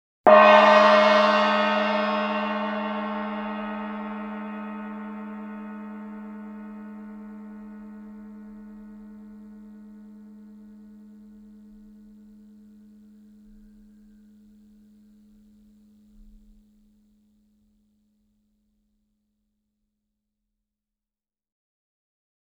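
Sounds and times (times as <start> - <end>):
sweet gongs: 0.3 - 16.1.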